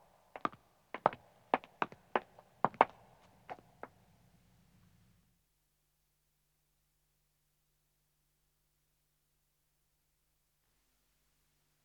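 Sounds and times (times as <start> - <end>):
man and woman footsteps walking on stone: 0.4 - 3.7.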